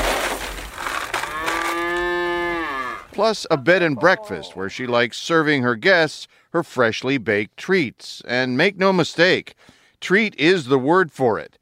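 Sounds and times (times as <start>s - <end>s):
rustling: 0.0s - 3.2s
cow mooing on a farm: 1.2s - 3.2s
speech: 3.2s - 11.6s.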